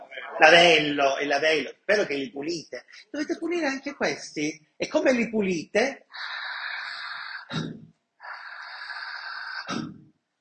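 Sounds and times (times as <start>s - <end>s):
speech: 0.4s - 6.4s
forceful breaths pushed out in a breathing demonstration: 6.1s - 10.0s.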